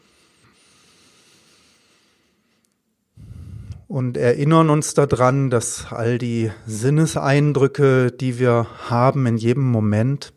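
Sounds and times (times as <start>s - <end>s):
slow deep breath in and out: 0.0s - 3.9s
speech: 3.9s - 10.3s.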